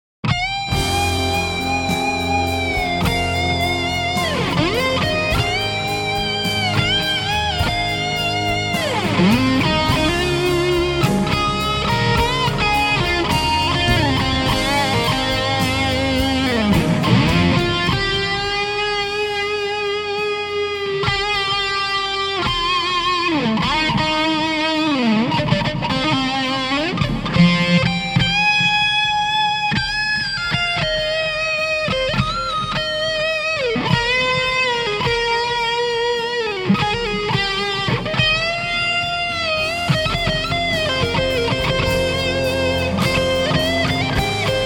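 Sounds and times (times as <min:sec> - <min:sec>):
solo Stratocaster electric guitar through fuzz pedal: 0:00.2 - 0:44.6.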